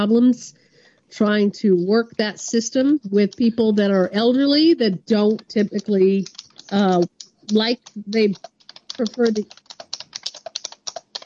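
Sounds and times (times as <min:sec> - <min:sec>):
speech: 0:00.0 - 0:09.6
computer keyboard keys clacking rapidly during an online town meeting: 0:03.2 - 0:03.6, 0:05.1 - 0:11.2.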